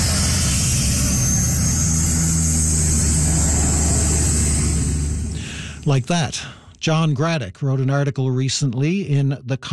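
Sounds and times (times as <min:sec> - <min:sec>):
water bomber aircraft propeller engines droning: 0:00.0 - 0:06.1
speech: 0:05.8 - 0:09.7.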